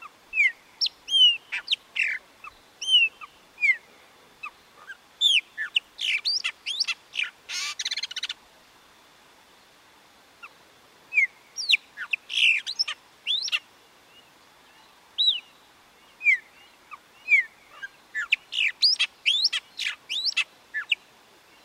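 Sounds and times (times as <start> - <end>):
Chopi blackbird singing whistled and slurred notes: 0.3 - 3.9, 5.2 - 8.3, 11.1 - 13.6, 15.2 - 15.6, 16.2 - 21.0.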